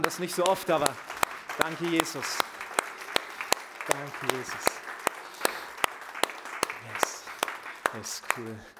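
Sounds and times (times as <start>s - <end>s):
crowd applauding: 0.0s - 8.7s
loud evenly spaced rhythmic claps: 0.0s - 8.7s
speech: 0.1s - 2.5s, 3.9s - 4.8s, 7.9s - 8.7s.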